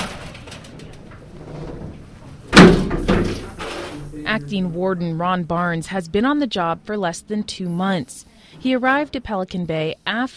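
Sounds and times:
heavy prison door slamming shut in a Security Housing Unit: 2.5s - 4.0s
speech: 4.3s - 10.3s.

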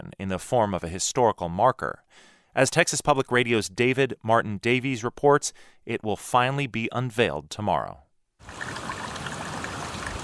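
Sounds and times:
speech: 0.2s - 8.8s
creek flowing with babbling rush of water: 8.4s - 10.2s.

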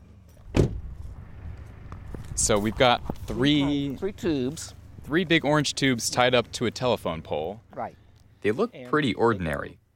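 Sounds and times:
car door thudding shut as people get out on a neighborhood street: 0.5s - 0.9s
speech: 2.4s - 9.8s.

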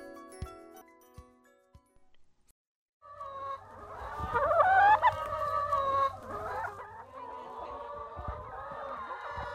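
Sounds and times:
flock of chickens clucking and squawking on an organic farm in Indiana: 3.1s - 9.5s.

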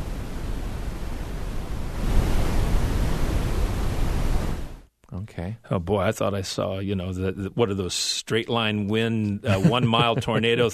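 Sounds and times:
brown noise: 0.0s - 8.1s, 8.8s - 10.7s
speech: 5.3s - 10.7s
laughter: 9.4s - 10.7s.

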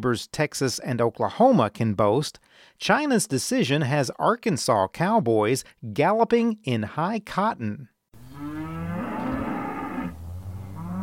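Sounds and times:
speech: 0.0s - 7.9s
hungry cattle herd on a cattle ranch mooing: 8.2s - 11.0s.

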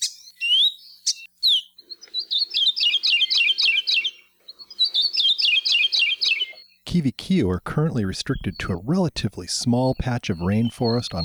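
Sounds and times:
Maui parrotbill kiwikiu singing: 0.0s - 11.2s
speech: 7.0s - 11.2s.

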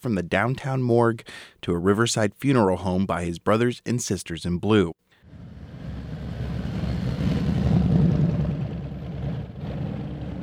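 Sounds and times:
speech: 0.0s - 5.4s
many motorcycle engines in a procession rumbling past: 5.3s - 10.4s.

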